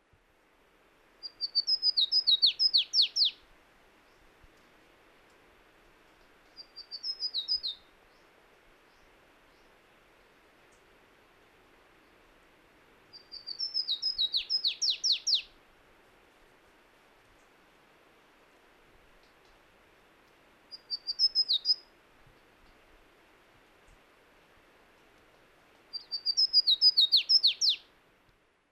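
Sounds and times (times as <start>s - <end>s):
Basileuterus flaveolus singing: 1.2s - 3.4s, 6.6s - 8.2s, 13.2s - 15.5s, 20.7s - 21.8s, 26.0s - 27.8s.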